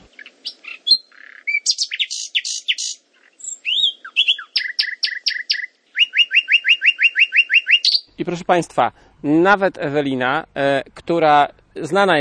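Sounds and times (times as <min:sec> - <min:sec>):
common nightingale singing: 0:00.0 - 0:08.2
speech: 0:08.2 - 0:12.1.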